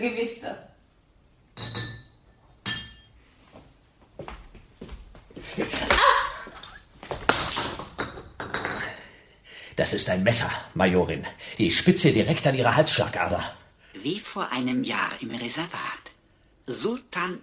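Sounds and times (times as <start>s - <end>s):
speech: 0.0s - 0.7s, 9.8s - 16.1s, 16.7s - 17.4s
glass clinking: 1.5s - 3.2s, 7.3s - 9.0s.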